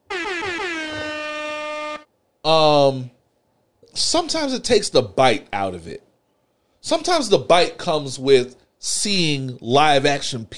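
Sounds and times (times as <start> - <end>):
air horn blasts: 0.0 - 2.1
speech: 2.5 - 3.2, 4.0 - 6.1, 6.8 - 10.5.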